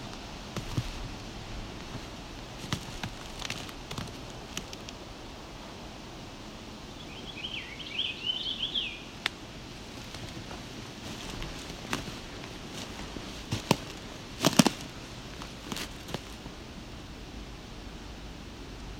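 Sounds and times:
crackles and snapping noises outdoors: 0:00.0 - 0:07.1, 0:09.2 - 0:18.9
purple finch singing in a tree: 0:06.8 - 0:09.2.

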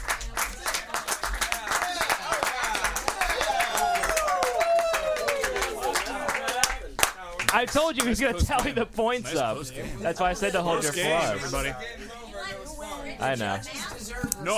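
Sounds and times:
excited voices calling and cheering: 0:00.0 - 0:08.2
audience applause: 0:00.0 - 0:08.8
speech: 0:07.6 - 0:12.2, 0:13.2 - 0:14.5.

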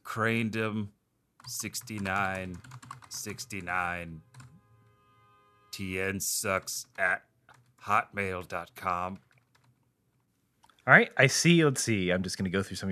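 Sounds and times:
speech: 0:00.2 - 0:04.3, 0:05.7 - 0:09.3, 0:10.9 - 0:12.9
rapid clicking of computer keyboard keys: 0:01.4 - 0:04.5, 0:06.5 - 0:09.8.

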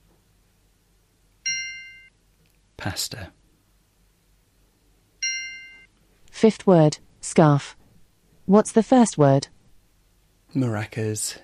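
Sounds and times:
bell ding in a word memory game: 0:01.5 - 0:02.1, 0:05.2 - 0:05.9
speech: 0:02.8 - 0:03.4, 0:06.4 - 0:07.8, 0:08.5 - 0:09.6, 0:10.5 - 0:11.4.

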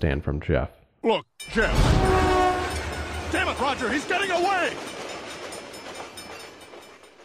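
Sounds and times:
speech: 0:00.0 - 0:02.3, 0:03.3 - 0:05.0
train passing on railroad tracks: 0:01.5 - 0:07.2.

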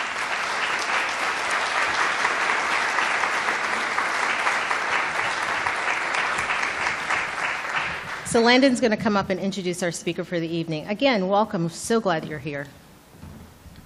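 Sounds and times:
audience applause from a sizable crowd: 0:00.0 - 0:08.4
speech: 0:08.3 - 0:12.8.

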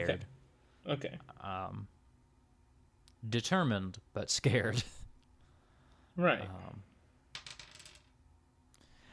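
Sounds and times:
speech: 0:00.0 - 0:01.9, 0:03.2 - 0:05.0, 0:06.2 - 0:06.9
dice clattering across a hard table during a game: 0:07.3 - 0:08.2.

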